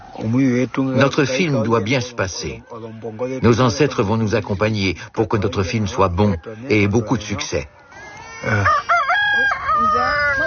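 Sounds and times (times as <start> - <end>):
speech: 0.2 - 10.4
rooster crowing in a village: 6.0 - 10.4.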